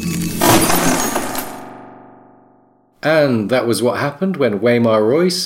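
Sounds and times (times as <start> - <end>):
steel sword blade shattering: 0.1 - 2.0
speech: 3.0 - 5.4.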